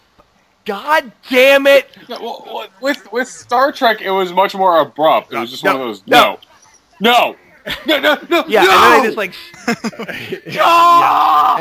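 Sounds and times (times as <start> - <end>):
speech: 0.7 - 6.4, 7.0 - 11.5
laughter: 7.6 - 11.0
man screaming in frustration: 8.5 - 9.2, 10.5 - 11.5.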